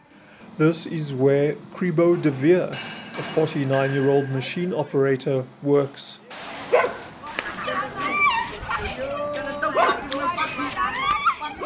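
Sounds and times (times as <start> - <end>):
street bustle: 0.0 - 11.6
speech: 0.6 - 6.3
stray dogs barking and yelping in a street: 6.7 - 7.1, 9.6 - 11.6.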